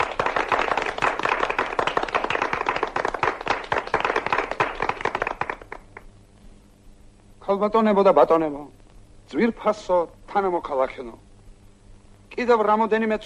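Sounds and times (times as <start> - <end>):
crowd applauding at a memorial farewell ceremony: 0.0 - 6.1
speech: 7.5 - 11.3, 12.4 - 13.2.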